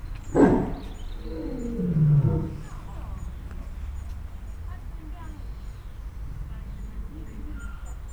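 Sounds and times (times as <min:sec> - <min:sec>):
lion roaring at a zoo: 0:00.2 - 0:04.3, 0:06.1 - 0:08.0.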